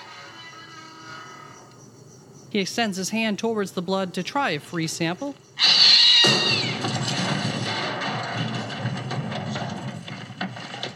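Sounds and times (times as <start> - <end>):
speech: 2.5 - 6.4
cat yowling in jump scare: 5.6 - 6.8
rumbling clattering noise: 6.2 - 10.9.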